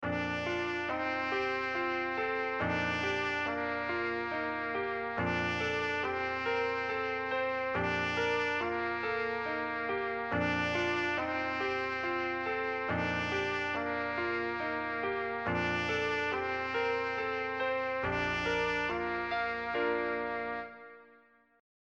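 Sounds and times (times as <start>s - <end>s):
piano: 0.0s - 21.6s.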